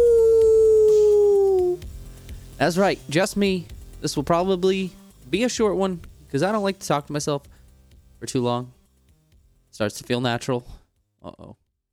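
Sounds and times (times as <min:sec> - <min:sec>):
wolf howl sound effect: 0:00.0 - 0:01.8
low rumble: 0:00.0 - 0:04.6
speech: 0:02.6 - 0:07.6, 0:08.2 - 0:08.8, 0:09.7 - 0:11.6.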